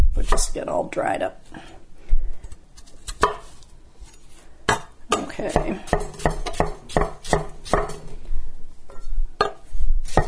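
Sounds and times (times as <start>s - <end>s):
speech: 0.2s - 1.7s, 5.4s - 6.7s
knife chopping cucumber slices on a cutting board: 4.7s - 8.1s, 10.1s - 10.2s.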